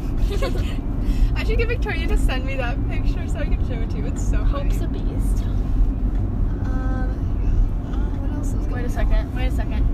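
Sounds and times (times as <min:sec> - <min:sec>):
car driving on the road: 0:00.0 - 0:09.9
speech: 0:00.3 - 0:05.6, 0:08.4 - 0:09.9.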